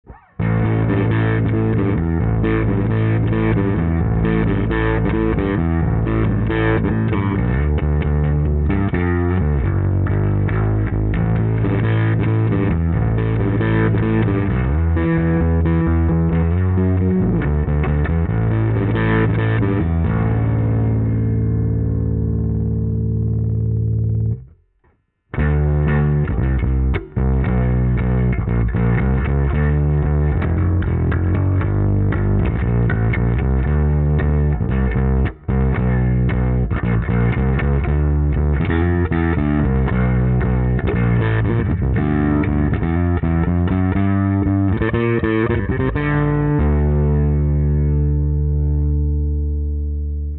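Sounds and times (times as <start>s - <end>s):
P bass through SVT7 pro amplifier at maximum distortion: 0.0s - 50.3s.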